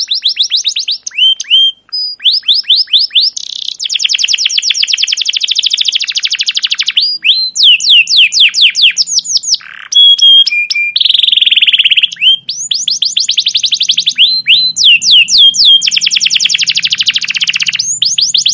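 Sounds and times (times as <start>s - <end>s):
captive canary singing a long varied chirping song: 0.0s - 18.5s.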